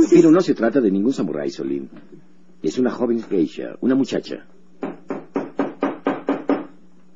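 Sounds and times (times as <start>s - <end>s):
speech: 0.1s - 4.6s
knocking on a door: 4.8s - 6.8s.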